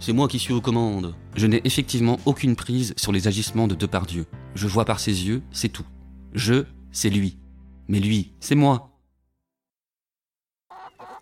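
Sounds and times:
speech: 0:00.0 - 0:08.9
guinea fowl and turkeys squawking in a farmyard: 0:10.7 - 0:11.2.

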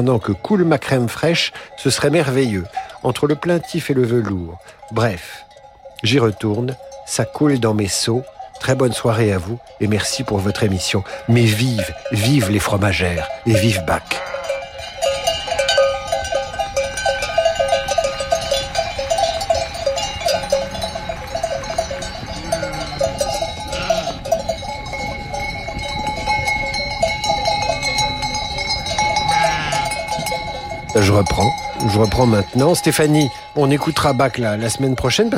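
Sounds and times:
speech: 0:00.0 - 0:14.4, 0:31.0 - 0:35.3
bells on ewes and cows clanking and jingling: 0:00.0 - 0:35.3
outdoor background: 0:00.0 - 0:35.3
faint animal bleats: 0:23.7 - 0:24.2, 0:29.3 - 0:30.0.

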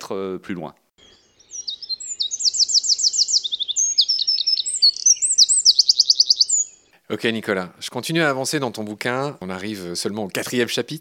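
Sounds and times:
speech: 0:00.1 - 0:00.8, 0:07.1 - 0:10.9
Eurasian wren singing rapid high trills and sharp chirps: 0:01.0 - 0:06.9.

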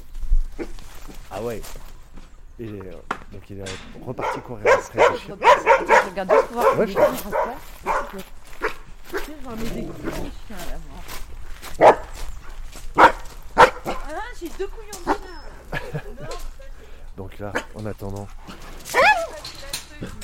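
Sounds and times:
dogs barking: 0:00.5 - 0:00.9, 0:04.0 - 0:10.8, 0:11.6 - 0:16.5, 0:17.4 - 0:20.2
speech: 0:01.4 - 0:01.9, 0:02.6 - 0:08.4, 0:09.1 - 0:11.2, 0:14.4 - 0:15.5, 0:17.2 - 0:18.6
dogs whining and whimpering: 0:14.9 - 0:16.4, 0:18.5 - 0:20.2
laughter: 0:15.3 - 0:17.0.

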